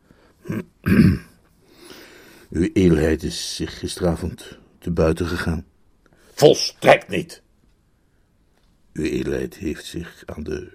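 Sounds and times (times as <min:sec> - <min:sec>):
person clearing throat disapprovingly: 0:00.4 - 0:01.4
speech: 0:00.5 - 0:01.2, 0:02.6 - 0:05.7, 0:06.4 - 0:07.4, 0:09.0 - 0:10.7.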